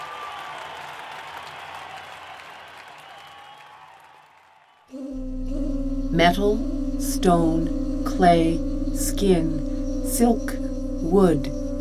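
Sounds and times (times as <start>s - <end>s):
large opera audience applauding: 0.0s - 4.9s
loud tonal sound: 5.0s - 11.7s
speech: 6.2s - 11.6s.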